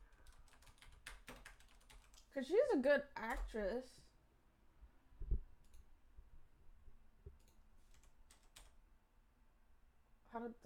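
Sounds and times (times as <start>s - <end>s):
person typing on a computer keyboard: 0.1s - 2.3s, 7.4s - 8.8s
speech: 2.4s - 4.1s, 10.4s - 10.6s.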